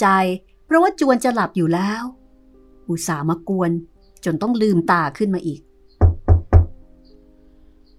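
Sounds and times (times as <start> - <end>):
speech: 0.0 - 2.2, 2.9 - 5.7
knocking on a door: 6.0 - 6.8.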